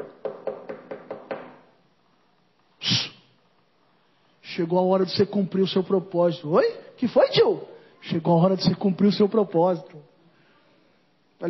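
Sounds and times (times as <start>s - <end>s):
knocking on a door: 0.0s - 1.6s
speech: 4.6s - 10.1s.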